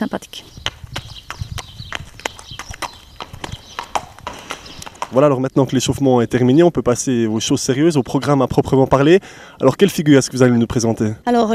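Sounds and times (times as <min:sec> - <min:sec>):
speech: 0:00.0 - 0:00.6, 0:05.1 - 0:11.5
dressage stallion hooves clopping on a hard surface: 0:00.3 - 0:09.2.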